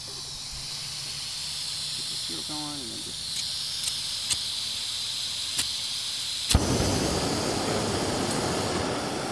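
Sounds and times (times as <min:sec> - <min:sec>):
steady broad hiss: 0:00.0 - 0:09.3
metal-and-flint fire starter striking: 0:01.9 - 0:05.9.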